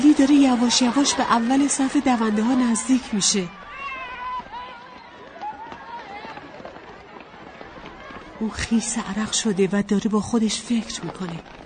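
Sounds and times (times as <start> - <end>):
high excited young voices: 0.0 - 9.5
crowd chatter: 0.0 - 11.6
footsteps of children running in a running race: 0.0 - 11.6
speech: 0.2 - 3.8, 8.4 - 11.6.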